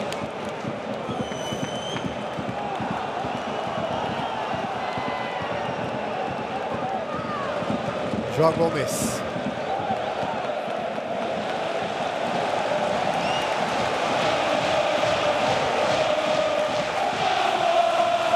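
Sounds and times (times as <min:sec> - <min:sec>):
large football stadium crowd roaring and cheering during a match: 0:00.0 - 0:18.3
faint rhythmic crowd chanting: 0:06.1 - 0:18.3
speech: 0:08.4 - 0:09.2.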